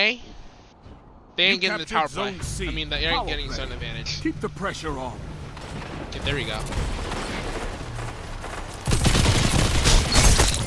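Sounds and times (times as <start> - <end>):
speech: 0.0 - 0.4, 1.4 - 5.3, 6.1 - 7.2
game ambience: 0.0 - 10.6
video game gunfire in a multiplayer match: 5.7 - 10.6.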